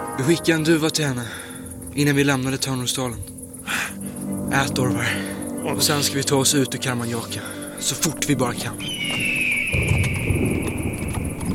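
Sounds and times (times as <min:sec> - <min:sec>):
continuous high tone: 0:00.0 - 0:11.5
speech: 0:00.2 - 0:01.4, 0:02.0 - 0:10.0
hooves of ridden horses clopping: 0:08.0 - 0:11.5.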